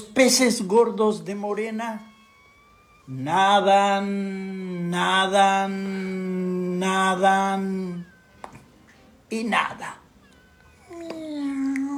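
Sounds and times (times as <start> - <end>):
speech: 0.2 - 2.1, 3.1 - 8.1, 9.3 - 10.0
cat meowing: 1.6 - 5.3, 6.8 - 11.9.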